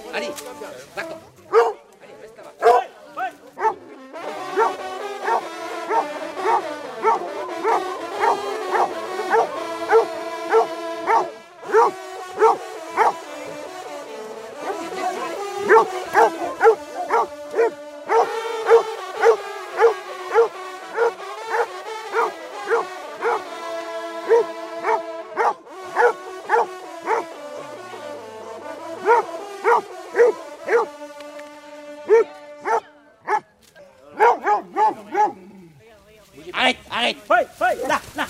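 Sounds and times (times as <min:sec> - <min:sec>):
laughter: 0:00.0 - 0:01.7, 0:03.5 - 0:31.1, 0:36.5 - 0:38.2
speech: 0:00.1 - 0:01.6
pack of hunting dogs barking and yipping over carcass: 0:01.5 - 0:01.8, 0:02.6 - 0:02.9, 0:03.6 - 0:03.8, 0:04.5 - 0:13.6, 0:14.6 - 0:23.6, 0:24.2 - 0:27.7, 0:28.6 - 0:31.2, 0:32.1 - 0:33.5, 0:34.2 - 0:35.5
hunting dogs yelping and whining: 0:04.6 - 0:13.1, 0:15.7 - 0:23.4, 0:24.3 - 0:27.3, 0:29.1 - 0:30.9.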